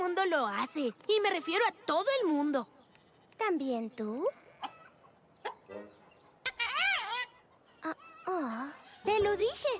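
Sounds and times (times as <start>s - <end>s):
speech: 0.2s - 2.8s, 3.4s - 4.4s, 9.3s - 9.7s
chicken letting out a longer wavering squawk: 6.4s - 8.4s.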